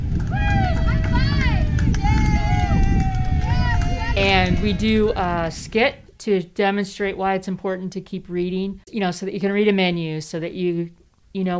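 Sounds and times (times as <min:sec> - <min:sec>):
crowd of children shouting and cheering in a large indoor space: 0:00.2 - 0:05.5
speech: 0:04.4 - 0:11.5.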